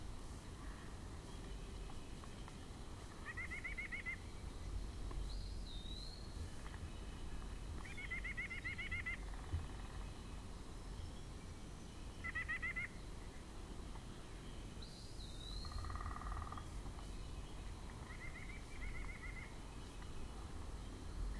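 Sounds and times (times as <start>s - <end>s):
faint high bird chirps: 0.7s - 13.4s, 14.0s - 21.3s
white-breasted nuthatch giving nasal calls: 3.2s - 4.3s, 5.3s - 10.3s, 12.2s - 13.4s, 15.0s - 20.3s.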